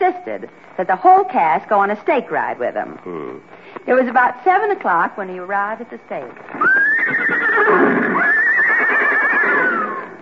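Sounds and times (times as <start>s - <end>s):
speech: 0.1s - 8.0s
horses neighing: 2.8s - 3.6s, 6.5s - 10.2s.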